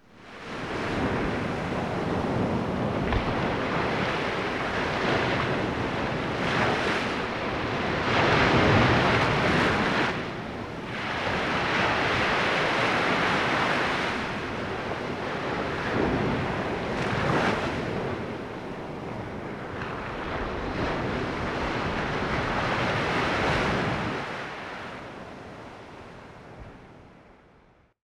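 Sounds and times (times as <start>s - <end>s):
ocean: 0.0s - 27.9s.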